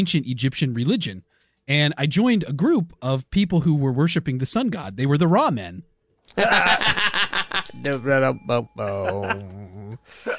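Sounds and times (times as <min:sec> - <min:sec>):
speech: 0:00.0 - 0:07.1, 0:07.7 - 0:10.3
people laughing and chuckling loudly: 0:06.3 - 0:07.7, 0:08.8 - 0:10.3
bright bell ding with sustained shimmer: 0:06.8 - 0:09.4.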